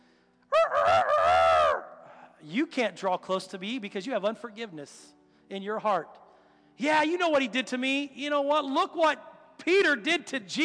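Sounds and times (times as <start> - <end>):
rooster crowing: 0.5 - 1.8
speech: 2.4 - 6.2, 6.8 - 10.6.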